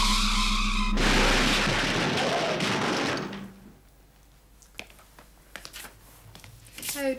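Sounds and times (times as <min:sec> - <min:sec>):
test car crashing with loud crunching: 0:00.8 - 0:03.8
settling crash debris clinking: 0:01.0 - 0:03.7.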